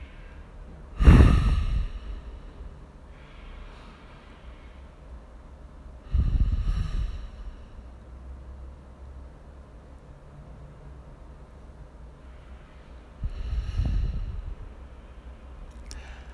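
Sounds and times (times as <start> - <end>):
loud heavy breaths during a guided relaxation exercise: 0.0 - 5.1, 6.0 - 8.0, 12.2 - 16.3
soft airy breath noise: 0.0 - 8.3, 11.9 - 16.3.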